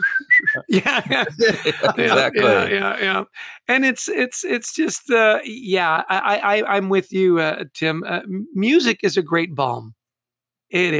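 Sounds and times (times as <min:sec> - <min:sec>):
person whistling a tune: 0:00.0 - 0:00.8
laughter: 0:00.0 - 0:03.8
speech: 0:00.7 - 0:10.0, 0:10.7 - 0:10.9.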